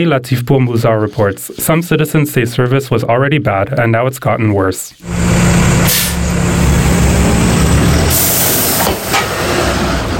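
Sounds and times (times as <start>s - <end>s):
speech: 0.0s - 6.7s
city bus engine idling with low rumble: 5.0s - 10.1s
city bus air brakes hissing: 5.2s - 6.9s, 7.9s - 9.4s.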